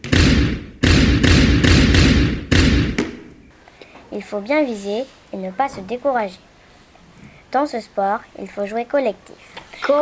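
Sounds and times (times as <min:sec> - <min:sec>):
ball dribbled bouncing on a hard floor: 0:00.0 - 0:03.4
speech: 0:04.2 - 0:06.5, 0:07.5 - 0:09.9.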